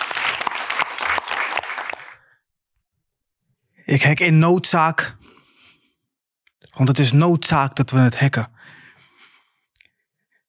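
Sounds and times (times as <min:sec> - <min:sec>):
warm applause from an audience for a poet: 0:00.0 - 0:02.2
speech: 0:03.9 - 0:05.3, 0:06.8 - 0:08.6.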